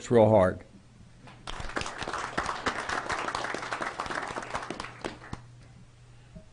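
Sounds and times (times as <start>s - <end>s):
speech: 0.0s - 0.7s
audience applause: 1.4s - 5.5s.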